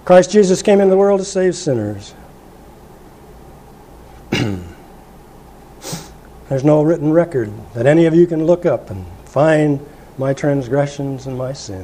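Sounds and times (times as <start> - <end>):
speech: 0.1 - 2.2, 6.5 - 11.8
harsh cough from a person with a lingering illness: 4.3 - 4.9
short rough throat-clearing hack: 4.3 - 4.9.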